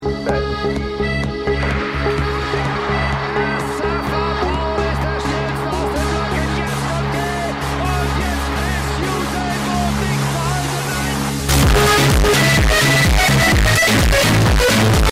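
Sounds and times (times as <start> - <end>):
bass music: 0.0 - 15.1.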